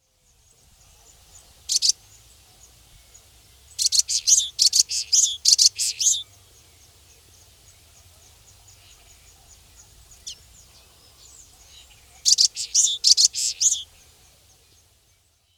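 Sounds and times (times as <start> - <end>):
common waxbill calling: 1.0 - 2.0, 3.7 - 6.3, 8.3 - 14.1.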